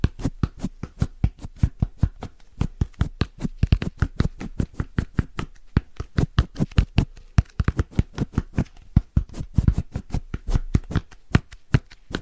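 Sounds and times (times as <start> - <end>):
fast rhythmic tapping with crisp clicks and low thump: 0.0 - 12.2
soft brushing hiss: 0.0 - 12.2.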